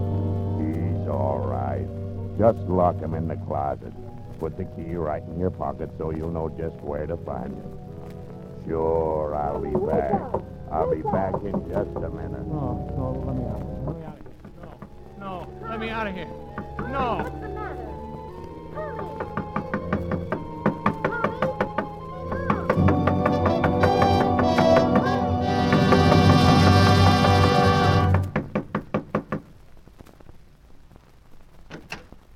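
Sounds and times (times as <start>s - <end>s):
music: 0.0s - 28.8s
speech: 1.2s - 7.9s, 8.7s - 14.1s, 15.8s - 17.4s
knocking on a wooden door: 11.1s - 12.1s, 16.5s - 17.0s, 19.0s - 26.6s, 28.1s - 29.5s.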